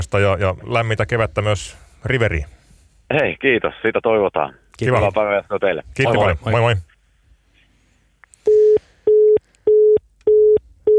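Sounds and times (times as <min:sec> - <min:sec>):
speech: 0:00.0 - 0:06.9
telephone line tones while placing a call: 0:08.5 - 0:10.9.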